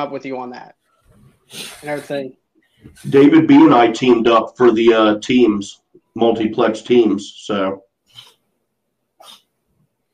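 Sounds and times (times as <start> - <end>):
speech: 0.0 - 0.8, 1.5 - 8.3
cat sneezing: 9.2 - 9.4.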